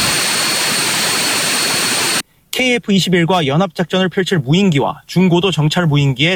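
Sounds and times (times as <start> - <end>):
military aircraft turbine engine running: 0.0 - 2.2
speech: 2.6 - 6.3.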